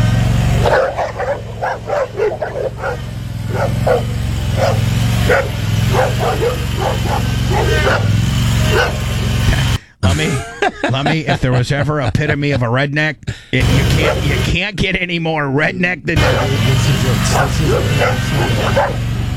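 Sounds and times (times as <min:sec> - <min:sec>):
riding mower engine idling: 0:00.0 - 0:09.9, 0:13.6 - 0:14.5, 0:16.2 - 0:19.3
dogs barking and yipping around a riding mower: 0:00.3 - 0:09.8, 0:13.6 - 0:14.5, 0:16.2 - 0:19.3
laughter: 0:00.7 - 0:14.5, 0:16.2 - 0:19.0
speech: 0:11.0 - 0:19.1.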